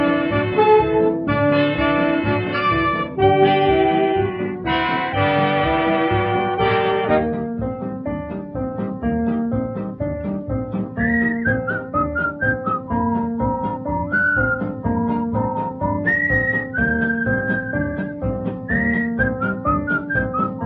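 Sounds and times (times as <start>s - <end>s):
full instrumental backing music: 0.0s - 20.6s
person whistling a bright bouncy melody: 11.0s - 20.6s.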